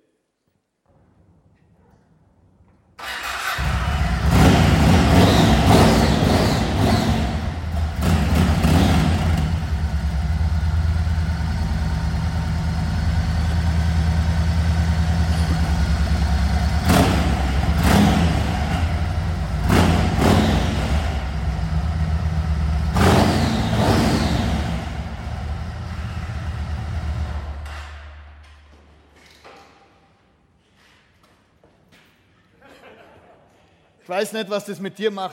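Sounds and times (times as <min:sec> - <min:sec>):
1700cc motorcycle engine idling and revving: 0:03.0 - 0:28.7
laughter: 0:32.5 - 0:33.9
speech: 0:34.1 - 0:35.3.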